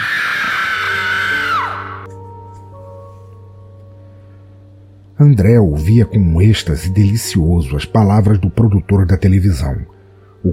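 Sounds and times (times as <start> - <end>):
woman screaming in horror echoing through asylum corridors: 0.0 - 2.1
speech: 5.2 - 10.5.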